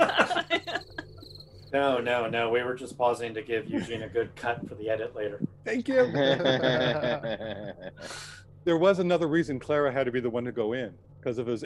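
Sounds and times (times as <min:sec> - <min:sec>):
laughter: 0:00.0 - 0:01.2, 0:03.5 - 0:04.9, 0:05.7 - 0:08.1
crickets chirping in a high trill: 0:00.0 - 0:04.8
speech: 0:01.7 - 0:11.6.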